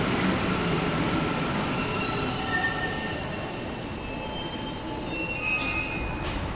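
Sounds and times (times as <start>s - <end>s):
metro train wheels squealing arriving at a metro station: 0.1s - 6.5s.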